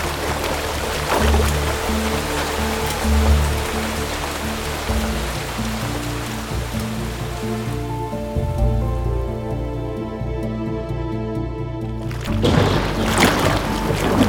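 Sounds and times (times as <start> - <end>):
splashing water: 0.0 - 9.2, 12.0 - 14.2
heavy rain from a storm pouring down: 0.0 - 14.2
low sustained humming tones: 0.0 - 14.2.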